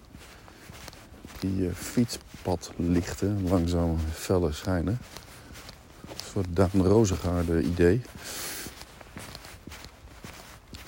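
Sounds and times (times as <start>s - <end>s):
constant hiss: 0.0s - 10.8s
footsteps of a person walking outdoors on a path beside a bike path: 0.0s - 10.8s
speech: 1.4s - 5.2s, 6.3s - 8.5s.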